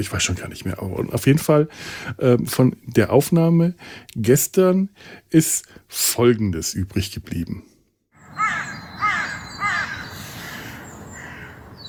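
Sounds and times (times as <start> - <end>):
speech: 0.0 - 7.7
crows cawing while circling overhead: 8.2 - 11.8.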